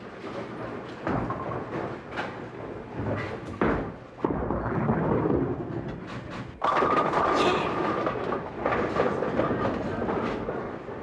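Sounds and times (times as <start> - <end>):
heavy bowling ball rumbling down a lane: 0.1 - 11.0.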